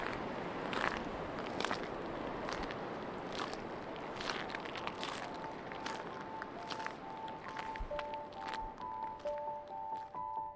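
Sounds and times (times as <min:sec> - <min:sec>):
footsteps crunching on broken shattered shells by the sea: 0:00.0 - 0:10.4.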